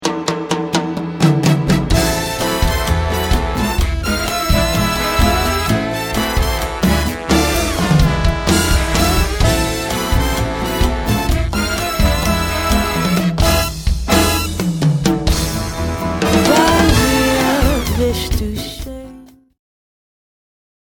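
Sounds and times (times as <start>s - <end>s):
cha-cha-cha music: 0.0s - 19.4s.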